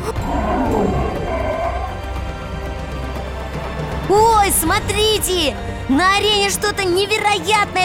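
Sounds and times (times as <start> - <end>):
lion roaring and growling in a circus arena: 0.0 - 2.7
speech: 4.1 - 7.8.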